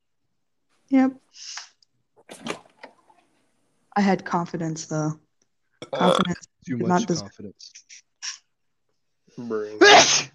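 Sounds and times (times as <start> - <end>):
speech: 0.9 - 1.7, 4.0 - 5.2, 5.8 - 8.4, 9.4 - 10.3
loud exaggerated sneeze done for effect: 9.8 - 10.3.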